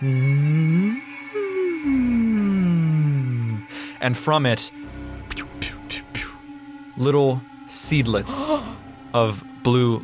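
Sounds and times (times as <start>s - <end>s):
speech: 0.0s - 0.3s, 4.0s - 5.5s, 7.0s - 10.0s
whale song: 0.0s - 3.6s
high shimmering drone: 0.0s - 10.0s.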